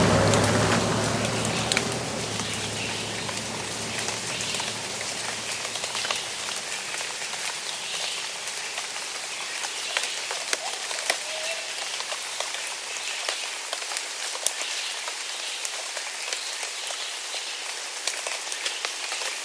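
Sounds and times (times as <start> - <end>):
low rumble: 0.0 - 7.4
steady rain on asphalt: 0.0 - 19.4.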